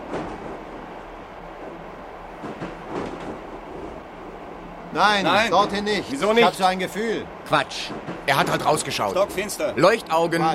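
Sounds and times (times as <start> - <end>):
train rumbling along rails: 0.0 - 10.5
train wheels clacking over track joints: 2.3 - 4.1, 4.9 - 10.5
speech: 5.0 - 10.5.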